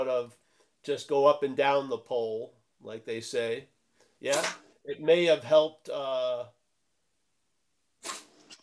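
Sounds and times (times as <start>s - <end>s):
speech: 0.0s - 6.6s
cat sneezing: 8.0s - 8.4s.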